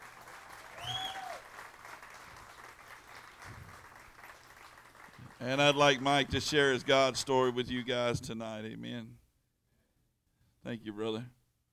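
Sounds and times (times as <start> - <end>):
room full of people applauding: 0.0 - 7.6
whistle rising over applause: 0.7 - 1.4
speech: 5.4 - 9.2, 10.6 - 11.4.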